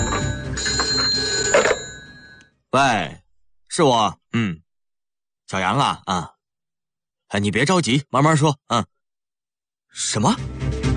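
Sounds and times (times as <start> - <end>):
office telephone ringing urgently: 0.0 - 2.6
speech: 2.7 - 4.6, 5.5 - 6.4, 7.3 - 9.0, 9.9 - 10.6.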